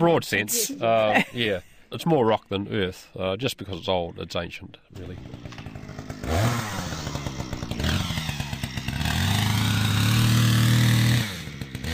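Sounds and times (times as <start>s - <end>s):
speech: 0.0s - 5.6s
chainsaw cutting through dense peat sediment: 4.9s - 11.9s.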